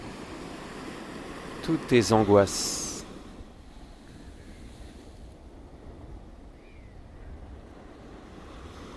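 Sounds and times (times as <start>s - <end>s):
ocean surf washing onto the shore: 0.0s - 8.9s
wind noise: 0.0s - 8.9s
speech: 1.6s - 2.8s.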